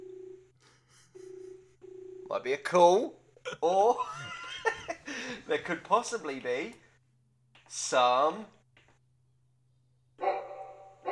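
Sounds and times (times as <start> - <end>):
speech: 2.3 - 4.3, 5.3 - 6.8, 7.7 - 8.6
laughter: 3.4 - 6.4
dog bark sound effect played from a keyboard: 10.2 - 11.1.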